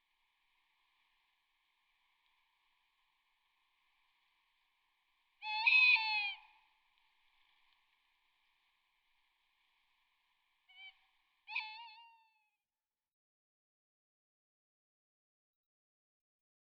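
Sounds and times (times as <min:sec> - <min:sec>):
tawny owl hooting: 0:05.4 - 0:06.6, 0:10.7 - 0:12.4.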